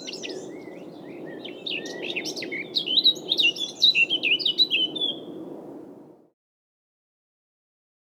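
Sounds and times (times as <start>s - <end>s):
Eurasian blackcap warbling song with fluting whistles: 0.0s - 5.3s.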